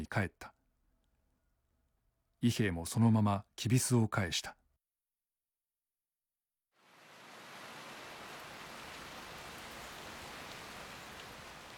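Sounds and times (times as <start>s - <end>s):
speech: 0.0s - 0.6s, 2.4s - 4.6s
heavy rain downpour: 6.8s - 11.7s.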